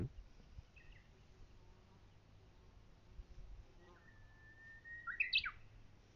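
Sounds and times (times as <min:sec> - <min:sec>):
Japanese bush warbler singing on a mountain: 0:00.0 - 0:02.4, 0:04.0 - 0:06.1.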